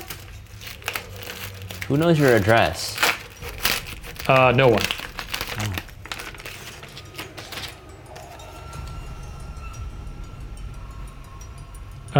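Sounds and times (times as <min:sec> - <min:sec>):
tape torn from a haphazardly taped-up package: 0:00.0 - 0:07.6
package rustling: 0:00.0 - 0:08.5
speech: 0:01.9 - 0:03.0, 0:04.3 - 0:05.0, 0:05.6 - 0:05.8.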